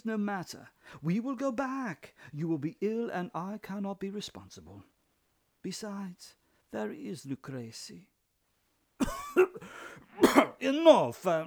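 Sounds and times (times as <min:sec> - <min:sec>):
speech: 0:00.0 - 0:04.9, 0:05.6 - 0:08.1, 0:09.0 - 0:11.4
sharp harsh coughs: 0:09.0 - 0:10.6.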